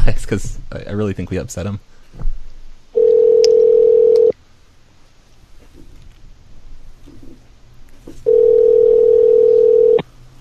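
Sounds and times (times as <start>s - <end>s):
faint noise: 0.0s - 10.4s
speech: 0.1s - 2.4s
telephone dial tone: 3.0s - 4.3s, 8.3s - 10.0s.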